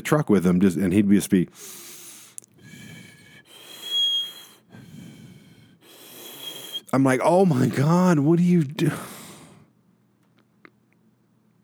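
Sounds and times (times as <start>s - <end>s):
speech: 0.0s - 1.9s, 6.9s - 9.1s
voice imitating whistling breath through the nose: 1.5s - 7.0s, 8.9s - 9.8s.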